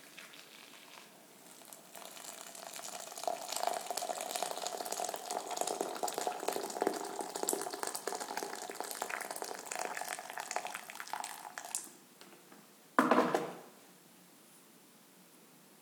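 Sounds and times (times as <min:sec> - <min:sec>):
water boiling in a kettle: 0:00.0 - 0:12.0.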